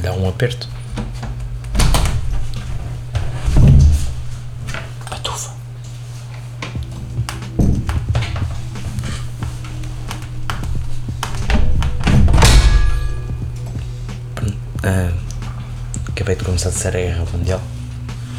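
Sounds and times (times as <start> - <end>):
speech: 0.1 - 0.8, 16.6 - 17.8
steady low hum: 0.6 - 18.3
worn broken door in a building banging: 0.7 - 5.0, 6.8 - 13.9.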